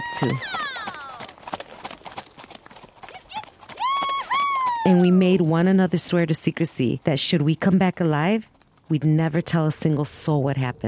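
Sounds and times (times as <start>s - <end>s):
horse whinnying: 0.0s - 1.4s, 3.2s - 5.2s
hooves of saddled horses clip-clopping as they are ridden out: 0.0s - 10.8s
speech: 0.2s - 0.6s, 4.8s - 10.8s.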